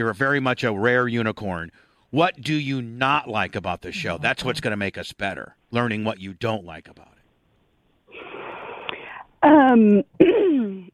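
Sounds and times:
speech: 0:00.0 - 0:07.2, 0:09.4 - 0:10.9
woman clearing her throat: 0:10.1 - 0:10.9.

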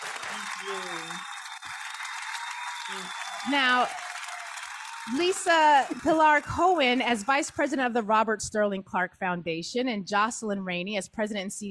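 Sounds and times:
audience applauding two guests at a morning event: 0:00.0 - 0:07.7
speech: 0:00.6 - 0:01.3, 0:02.9 - 0:04.0, 0:05.0 - 0:11.7.

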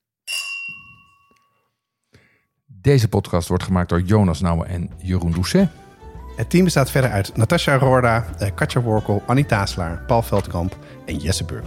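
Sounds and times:
glasses clinking in a New Year's toast: 0:00.3 - 0:01.7
speech: 0:02.8 - 0:05.8, 0:06.4 - 0:11.6.

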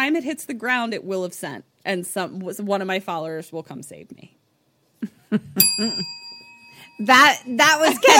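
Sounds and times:
speech: 0:00.0 - 0:04.4, 0:05.3 - 0:06.2, 0:07.0 - 0:08.1
small bell struck once: 0:05.6 - 0:08.1.

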